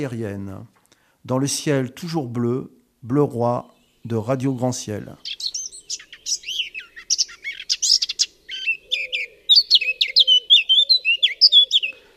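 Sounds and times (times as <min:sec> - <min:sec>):
speech: 0:00.0 - 0:06.0
morning birdsong with high-pitched chirps and trills: 0:03.2 - 0:12.1.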